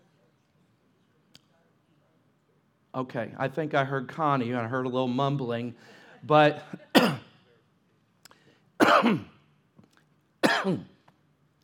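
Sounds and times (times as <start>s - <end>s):
speech: 3.0s - 7.2s, 9.0s - 9.3s, 10.6s - 10.9s
person coughing harshly: 6.7s - 7.4s, 8.8s - 9.4s, 10.4s - 11.0s.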